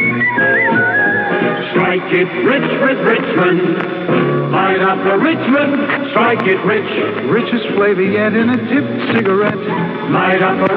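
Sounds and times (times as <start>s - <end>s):
whistled cigarette advertising jingle melody: 0.0s - 1.8s
dense band-limited backing music: 0.0s - 10.7s
speech: 2.1s - 10.7s.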